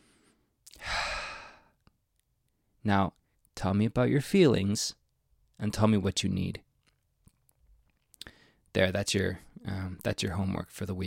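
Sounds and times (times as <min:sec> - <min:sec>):
deep breath in through the nose, out through the mouth: 0:00.0 - 0:01.8
speech: 0:02.8 - 0:05.0, 0:05.6 - 0:06.7, 0:08.7 - 0:11.0.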